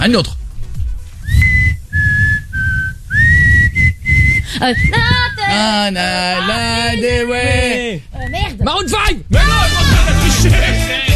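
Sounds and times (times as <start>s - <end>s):
speech: 0.0s - 0.4s, 4.6s - 11.1s
person whistling a song melody: 1.2s - 5.5s.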